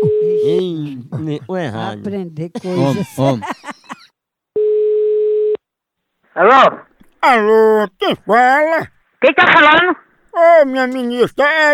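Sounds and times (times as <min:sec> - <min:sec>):
telephone ringing tone of an outgoing call: 0:00.0 - 0:00.6, 0:04.6 - 0:05.6
laughter: 0:00.0 - 0:04.1
speech: 0:01.3 - 0:03.8, 0:06.4 - 0:11.7.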